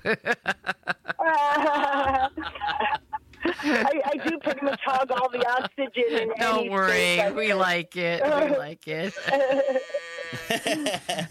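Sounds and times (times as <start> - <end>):
speech: 0.0 - 0.6, 5.0 - 11.2
laughter: 0.0 - 6.6, 9.1 - 11.2
cows mooing: 9.1 - 10.5.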